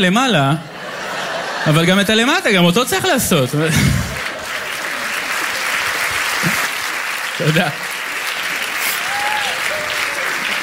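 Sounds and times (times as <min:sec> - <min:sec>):
speech: 0:00.0 - 0:00.7, 0:01.6 - 0:04.0, 0:07.4 - 0:07.9
laughter: 0:00.6 - 0:06.8
many men clapping together: 0:04.1 - 0:10.6.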